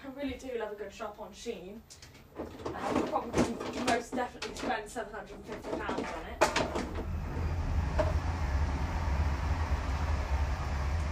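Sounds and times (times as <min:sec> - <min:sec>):
speech: 0:00.2 - 0:06.9
train passing by with heavy low-frequency roar: 0:06.9 - 0:11.1.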